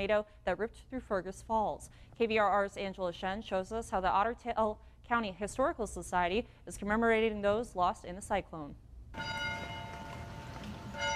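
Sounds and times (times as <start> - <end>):
speech: 0.0 - 9.4
church bells ringing across town in Fergus Falls, Minnesota: 9.2 - 11.1.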